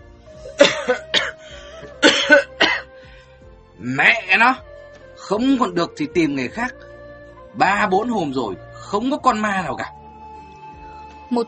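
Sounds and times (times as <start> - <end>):
hoarse rasping coughs of a hunched old man: 0.5 - 3.0
speech: 0.6 - 1.0, 3.9 - 4.7, 5.3 - 6.8, 7.6 - 10.0, 11.3 - 11.4.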